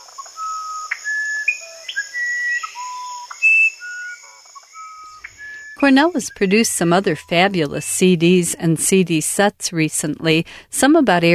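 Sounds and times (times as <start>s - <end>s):
steady high-pitched insect drone: 0.0s - 7.5s
musician wren singing pure whistled notes: 0.0s - 8.2s
speech: 5.8s - 11.3s.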